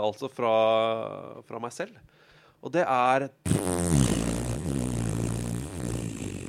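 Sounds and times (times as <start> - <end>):
speech: 0.0 - 4.8
mouth imitating a long cartoon fart: 3.4 - 6.4.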